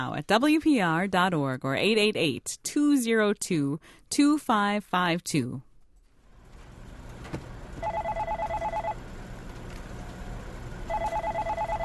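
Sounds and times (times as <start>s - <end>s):
speech: 0.0s - 5.7s
telephone ringing with a fast electronic trill: 7.8s - 9.0s, 10.9s - 11.8s.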